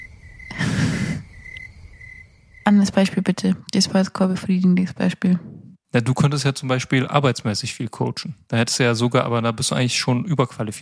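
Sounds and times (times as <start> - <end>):
crickets chirping: 0.0 - 4.1
speech: 2.8 - 10.8.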